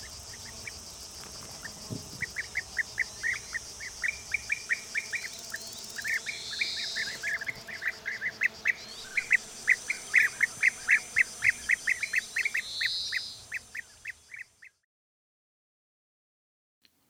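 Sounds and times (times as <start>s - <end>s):
constant high insect-like hiss: 0.0s - 14.7s
colony of European bee-eaters calling: 1.5s - 14.7s.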